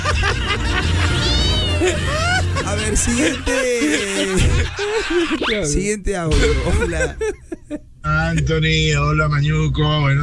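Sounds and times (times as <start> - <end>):
laughter: 0.0 - 5.6, 6.3 - 7.8
cat meowing: 1.1 - 2.0
speech: 2.9 - 10.2.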